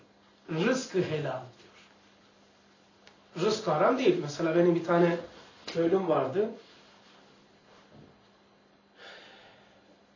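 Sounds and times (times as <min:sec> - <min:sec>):
speech: 0:00.5 - 0:01.6, 0:03.4 - 0:06.7
deep breath intake with snort-like rush of air: 0:09.0 - 0:09.9.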